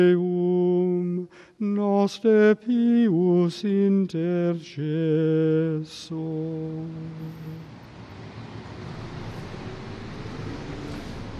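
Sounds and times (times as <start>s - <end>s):
speech: 0.0s - 0.3s, 1.6s - 7.7s
city traffic rumble around the Celio hill in Rome: 4.8s - 11.3s.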